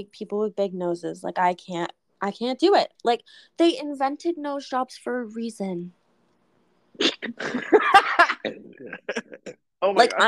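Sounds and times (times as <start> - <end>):
speech: 0.0 - 6.0, 7.0 - 10.2
person laughing: 7.4 - 10.2
burp breaking through laughter: 8.4 - 10.0.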